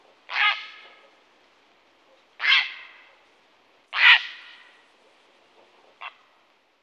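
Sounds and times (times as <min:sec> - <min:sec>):
grey heron: 0:00.3 - 0:01.2, 0:02.0 - 0:03.3, 0:03.9 - 0:06.5.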